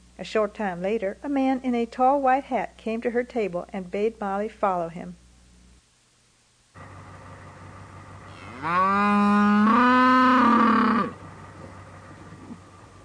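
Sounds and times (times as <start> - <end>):
low hum: 0.0 - 13.0
speech: 0.2 - 5.2, 8.6 - 9.5
cow mooing in a pen of cows and calves: 8.3 - 11.2.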